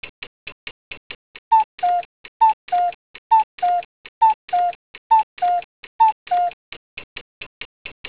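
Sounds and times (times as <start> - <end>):
clock: 1.5 - 7.2.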